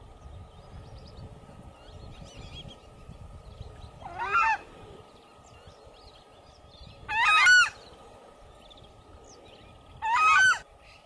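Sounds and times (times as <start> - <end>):
steady high hum: 0.0 - 11.0
southern screamer honking calls: 4.0 - 4.8, 7.1 - 7.9, 10.0 - 10.7.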